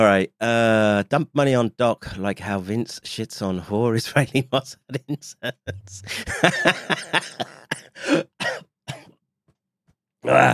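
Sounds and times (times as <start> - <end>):
speech: 0.0 - 8.7, 10.2 - 10.5
laughter: 4.9 - 8.2
coughing and throat clearing: 5.7 - 9.2.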